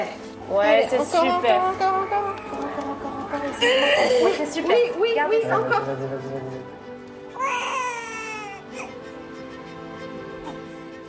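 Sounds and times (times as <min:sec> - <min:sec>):
speech: 0:00.0 - 0:02.8, 0:03.4 - 0:06.8
newborn baby crying just after birth: 0:01.5 - 0:04.3, 0:07.3 - 0:09.0.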